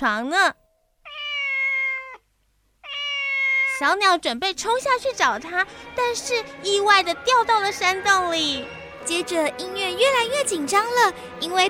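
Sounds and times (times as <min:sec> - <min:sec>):
speech: 0:00.0 - 0:00.6, 0:03.8 - 0:11.6
cat meowing: 0:01.0 - 0:03.9.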